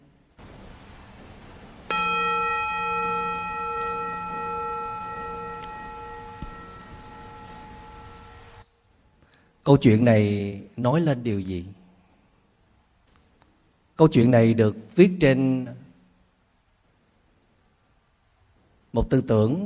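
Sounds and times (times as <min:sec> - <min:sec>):
single bell struck and ringing: 0:01.9 - 0:08.6
speech: 0:09.7 - 0:11.8, 0:14.0 - 0:15.8, 0:18.9 - 0:19.6.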